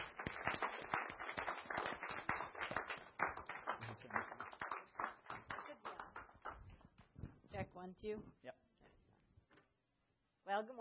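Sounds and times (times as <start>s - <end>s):
audience applauding to welcome a speaker: 0.0s - 6.8s
speech: 7.8s - 8.6s, 10.5s - 10.8s.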